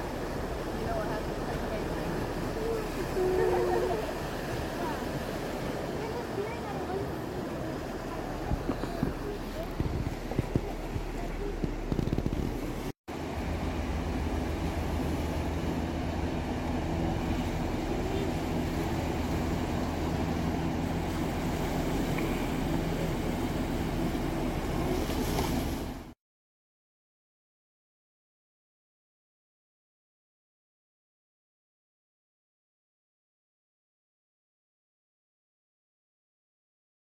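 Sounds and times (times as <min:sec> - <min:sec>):
heavy boat engine rumble: 0:00.0 - 0:26.1
churning water: 0:00.0 - 0:26.2.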